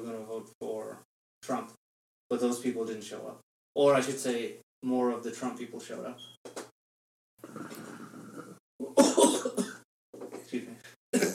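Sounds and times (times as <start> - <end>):
speech: 2.3 - 6.4
rough throat noises: 7.4 - 9.6
person coughing loudly: 8.8 - 9.8, 11.2 - 11.3.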